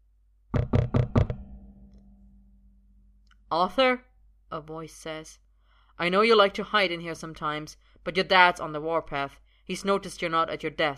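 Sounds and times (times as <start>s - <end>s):
firm knocks on a wooden door: 0.5s - 1.5s
speech: 3.5s - 5.4s, 6.0s - 10.9s.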